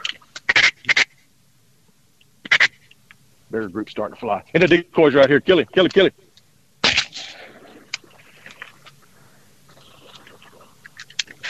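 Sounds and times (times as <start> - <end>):
outdoor rustling: 1.8 - 11.4
speech: 3.5 - 6.2
shotgun blast fired at a duck during a duck hunt: 6.8 - 7.6.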